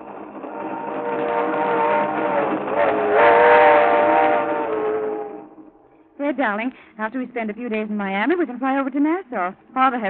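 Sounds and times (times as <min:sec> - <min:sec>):
train rumbling: 0:00.0 - 0:10.0
train whistle blowing in long sustained tones: 0:00.4 - 0:06.1
speech: 0:06.3 - 0:10.0.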